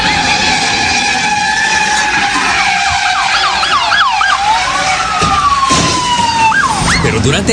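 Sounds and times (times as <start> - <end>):
police car siren during a police chase in North Hollywood Los Angeles: 0.0 - 7.5
steady roar of engine and traffic noise: 0.0 - 7.5
speech: 7.2 - 7.5.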